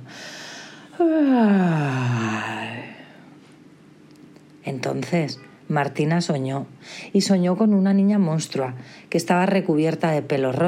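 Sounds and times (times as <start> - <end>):
long drawn-out human yawn: 0.5 - 3.2
speech: 1.0 - 2.6, 4.7 - 10.6.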